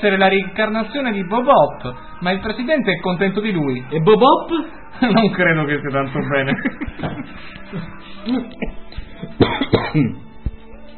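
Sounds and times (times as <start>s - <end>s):
speech: 0.0s - 10.2s
laughter: 5.0s - 9.4s
person coughing harshly with a telephone-like quality: 9.2s - 10.3s.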